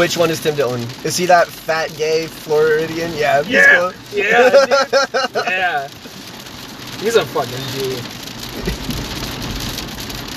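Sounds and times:
speech: 0:00.0 - 0:06.1, 0:07.0 - 0:08.8
hail pelting down outside: 0:00.0 - 0:10.3
laughter: 0:03.5 - 0:05.9, 0:08.6 - 0:09.0.

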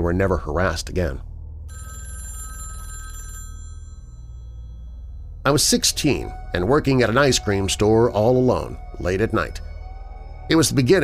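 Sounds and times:
speech: 0:00.0 - 0:01.8, 0:05.5 - 0:09.7, 0:10.5 - 0:11.0
low hum: 0:00.0 - 0:11.0
telephone ringing at an ice cream store in Canada: 0:01.7 - 0:05.1.

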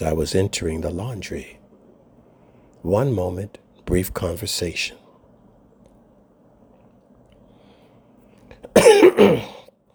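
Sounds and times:
speech: 0:00.0 - 0:01.6, 0:02.8 - 0:05.0
person coughing harshly: 0:08.6 - 0:09.7.

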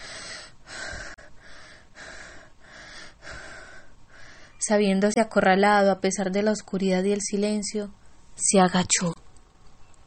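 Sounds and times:
heavy panting after running: 0:00.0 - 0:04.5
speech: 0:04.7 - 0:09.2.

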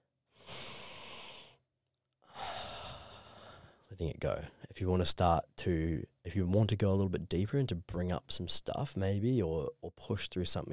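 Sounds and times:
slow deep breath in through the nose and out through the mouth: 0:00.3 - 0:01.6, 0:02.2 - 0:03.9
speech: 0:03.9 - 0:10.7.

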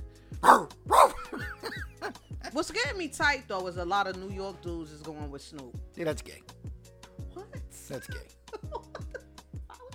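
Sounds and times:
harsh dog-like barks: 0:00.4 - 0:02.1
short yelps: 0:00.4 - 0:02.1
speech: 0:02.6 - 0:06.5, 0:07.9 - 0:08.4.

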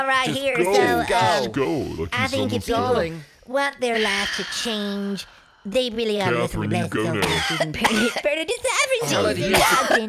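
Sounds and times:
speech: 0:00.0 - 0:10.0
person clearing throat: 0:07.0 - 0:08.2, 0:09.2 - 0:10.0
person coughing: 0:07.0 - 0:08.2, 0:09.2 - 0:10.0.

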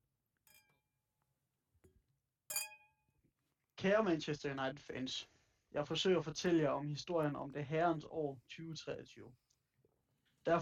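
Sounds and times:
glasses clinking in a toast: 0:02.5 - 0:03.0
speech: 0:03.8 - 0:09.4.

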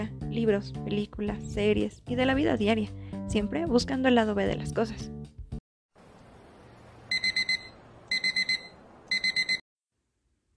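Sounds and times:
speech: 0:00.0 - 0:05.2
alarm clock ringing with rapid high-pitched beeps: 0:07.1 - 0:09.6.

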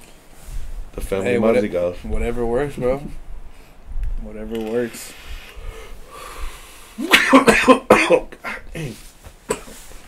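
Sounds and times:
quiet hiss: 0:00.0 - 0:10.0
speech: 0:01.0 - 0:03.2, 0:04.2 - 0:05.2, 0:07.0 - 0:09.0
raspy coughing fit with wheezy throaty breaths: 0:07.0 - 0:09.8.

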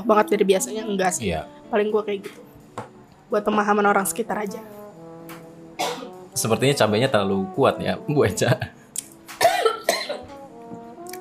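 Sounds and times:
speech: 0:00.0 - 0:04.8, 0:06.4 - 0:08.8
person coughing: 0:05.8 - 0:06.2, 0:09.4 - 0:10.3.

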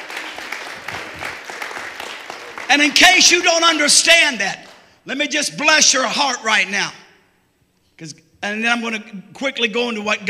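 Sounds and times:
crowd clapping in sustained applause: 0:00.0 - 0:04.0
speech: 0:02.7 - 0:07.0, 0:08.0 - 0:10.2.

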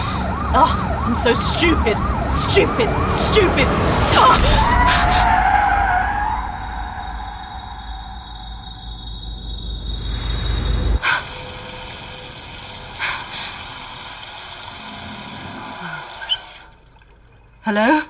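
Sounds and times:
roaring road noise: 0:00.0 - 0:15.8
speech: 0:00.5 - 0:05.2, 0:17.7 - 0:18.0
worn car tires skidding and squealing in a chase: 0:01.9 - 0:07.5.

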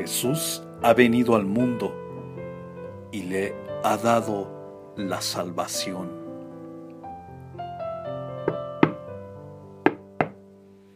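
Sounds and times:
speech: 0:00.0 - 0:02.0, 0:03.1 - 0:06.2
sharp knocks on a door: 0:08.4 - 0:09.1, 0:09.8 - 0:10.4.

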